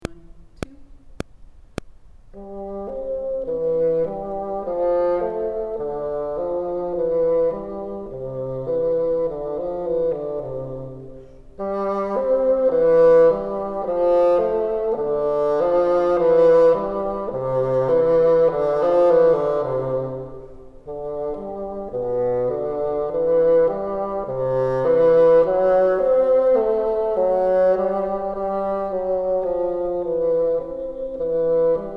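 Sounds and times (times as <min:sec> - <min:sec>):
bassoon playing top part: 0:02.4 - 0:31.9.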